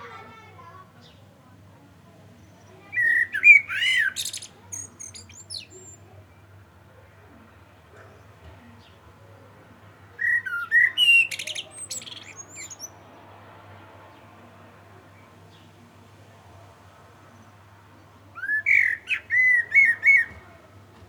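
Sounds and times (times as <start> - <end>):
common blackbird Turdus merula warbling song: 2.4 - 6.1, 10.2 - 13.0, 18.4 - 20.4.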